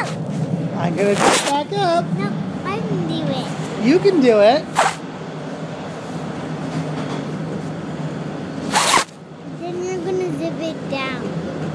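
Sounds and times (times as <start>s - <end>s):
steady rumbling background: 0.0s - 11.7s
speech: 0.8s - 4.8s
father's coat zipper pulled by a young child: 1.1s - 1.6s, 4.8s - 5.0s, 8.7s - 9.2s.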